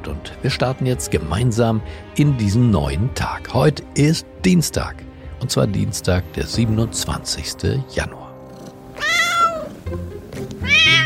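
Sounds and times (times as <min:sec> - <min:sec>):
speech: 0:00.2 - 0:08.2
cat meowing: 0:08.9 - 0:09.8, 0:10.6 - 0:11.0.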